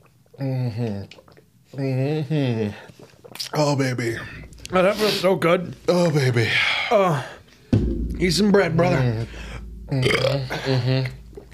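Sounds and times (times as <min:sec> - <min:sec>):
speech: 0:00.4 - 0:07.4, 0:08.2 - 0:11.2
long loud croaking burp: 0:09.9 - 0:11.5.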